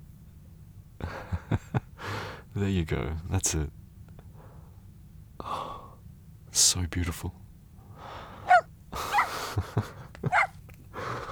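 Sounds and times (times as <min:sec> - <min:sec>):
faint room noise: 0:00.0 - 0:11.3
speech: 0:02.6 - 0:03.8, 0:06.8 - 0:07.4, 0:09.6 - 0:09.9
female puppy yipping and barking: 0:08.5 - 0:09.4, 0:10.3 - 0:10.6.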